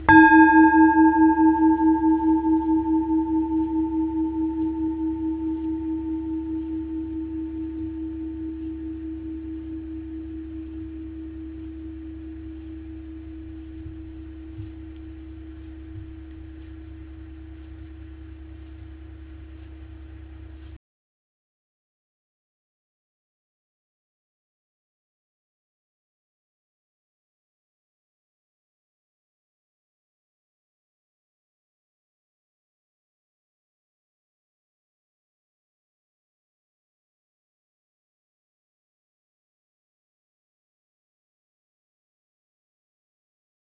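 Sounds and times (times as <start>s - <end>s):
Tibetan singing bowl: 0.0s - 18.6s.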